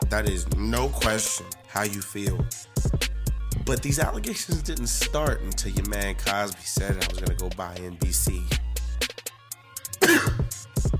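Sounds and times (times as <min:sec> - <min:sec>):
speech: 0:00.1 - 0:02.7, 0:03.7 - 0:08.6
loud cough: 0:10.0 - 0:10.9.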